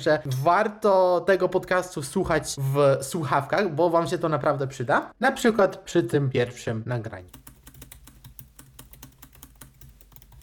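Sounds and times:
speech: 0.0 - 7.5
fast typing on a laptop keyboard: 7.3 - 10.4.

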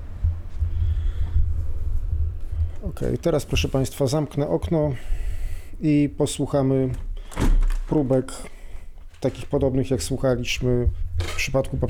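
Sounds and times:
wind buffeting a microphone outdoors outside a window: 0.0 - 3.8, 10.6 - 11.8
speech: 2.9 - 5.2, 5.8 - 8.6, 9.2 - 11.8.

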